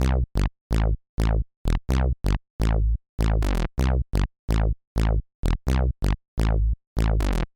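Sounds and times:
even fuller synth bass: 0.0 - 7.5.

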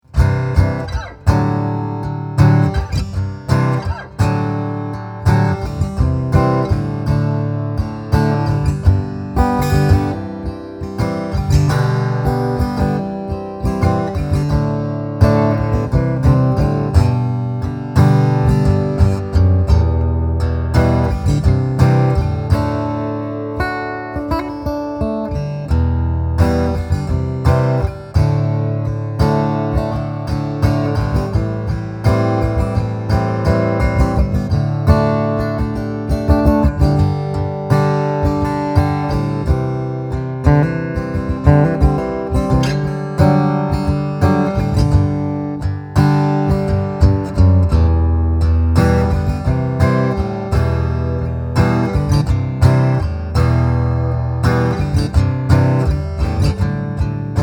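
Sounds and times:
Cole Clark Angel 3 guitar strumming: 0.0 - 57.4.

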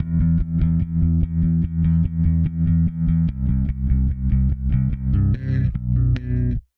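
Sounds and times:
sidechained bass: 0.0 - 6.6.

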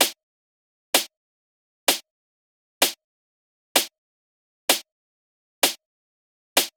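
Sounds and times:
dry snare drum loop: 0.0 - 0.2, 1.9 - 2.1, 2.8 - 3.0, 3.8 - 4.0, 4.7 - 4.9, 5.6 - 5.8, 6.6 - 6.7.

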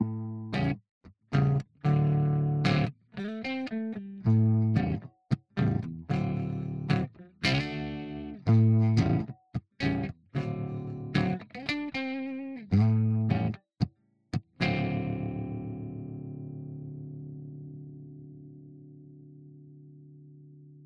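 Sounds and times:
California style guitar amp tone on axis overload: 1.4 - 13.6, 14.6 - 20.8.

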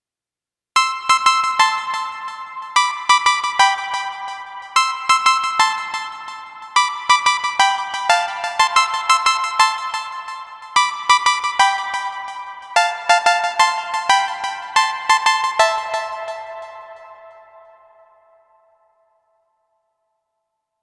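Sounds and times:
Nord Lead A1 synth lead: 1.0 - 18.5.

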